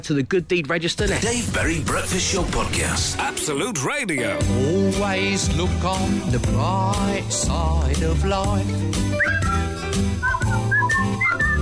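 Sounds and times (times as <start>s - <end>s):
speech: 0.0s - 10.1s
bouncy instrumental backing music: 0.0s - 11.6s
person attempting to whistle a tune: 9.1s - 11.6s.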